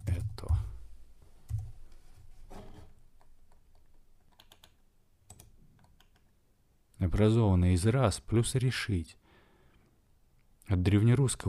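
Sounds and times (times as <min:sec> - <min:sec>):
typing a word on a computer keyboard: 0:03.5 - 0:06.3
speech: 0:07.0 - 0:09.2, 0:10.7 - 0:11.4.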